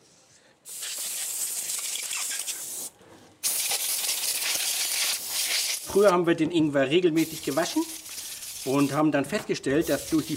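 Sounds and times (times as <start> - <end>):
compressed-air blow gun blasting the skin off fresh ginger: 0.6 - 6.1, 7.2 - 9.1, 9.8 - 10.3
speech: 6.0 - 8.0, 8.6 - 10.3.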